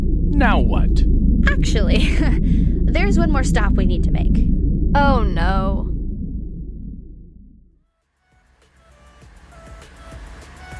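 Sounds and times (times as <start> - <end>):
car engine rumbling: 0.0 - 7.8
speech: 0.4 - 5.9.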